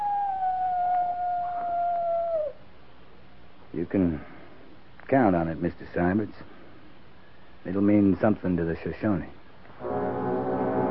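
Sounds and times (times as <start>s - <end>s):
coyote howling: 0.0s - 2.7s
faint hiss: 0.0s - 10.9s
speech: 3.8s - 4.3s, 5.1s - 6.6s, 7.6s - 10.0s.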